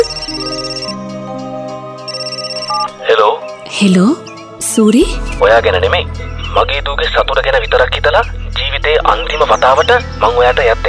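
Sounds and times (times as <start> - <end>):
electronic phone ringtone for an incoming call: 0.0 - 1.2, 2.0 - 3.0
speech: 3.1 - 10.8.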